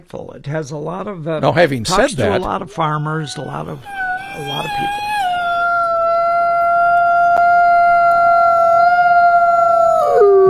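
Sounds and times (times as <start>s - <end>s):
speech: 0.0s - 5.2s
gray wolf howling: 3.1s - 10.4s.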